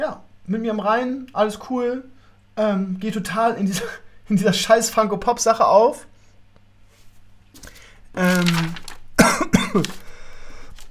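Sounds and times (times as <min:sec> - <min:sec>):
speech: 0:00.0 - 0:06.1, 0:08.2 - 0:08.8, 0:09.7 - 0:10.0
person coughing harshly: 0:09.2 - 0:10.1.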